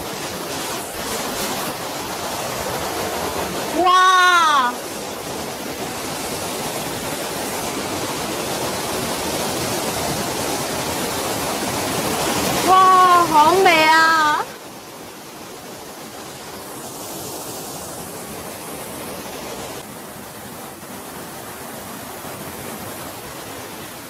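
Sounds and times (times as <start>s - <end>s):
waterfall roaring: 0.0s - 24.0s
person exclaiming excitedly: 3.8s - 4.8s.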